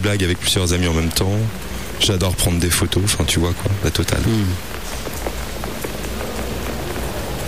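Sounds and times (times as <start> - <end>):
speech: 0.0 - 4.9
steady rain falling across a city: 0.0 - 7.4.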